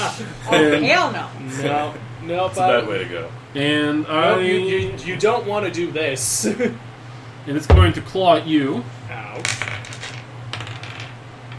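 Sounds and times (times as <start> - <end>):
speech: 0.2 - 6.8, 7.4 - 9.7
dice clattering across a hard table surface: 9.4 - 11.5.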